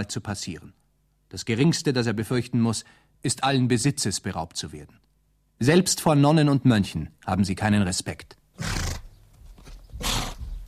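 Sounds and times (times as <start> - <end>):
speech: 0.0 - 8.8
horse ridden by a monk snorting and whinnying in a forest: 8.6 - 9.2, 10.0 - 10.6.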